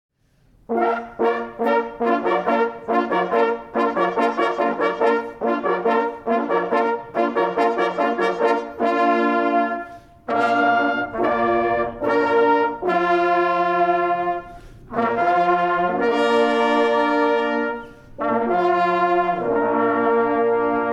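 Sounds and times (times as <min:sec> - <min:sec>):
hunting horn players sounding a call: 0:00.7 - 0:20.9.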